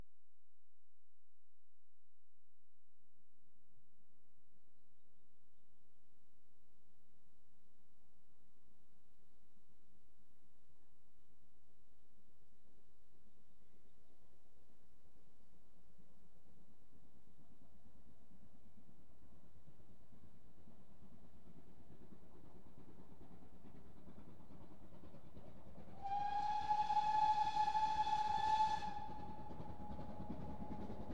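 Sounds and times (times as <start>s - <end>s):
high speed train passing: 24.0s - 31.1s.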